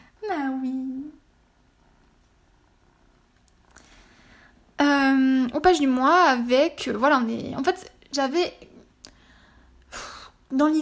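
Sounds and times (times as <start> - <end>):
cat purring: 0.0 - 6.5
speech: 4.8 - 8.7, 10.5 - 10.7.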